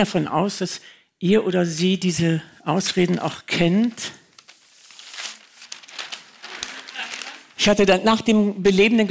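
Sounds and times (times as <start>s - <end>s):
speech: 0.0s - 4.2s, 7.6s - 9.0s
long paper roll rustling and crinkling as it is unrolled: 3.6s - 7.9s.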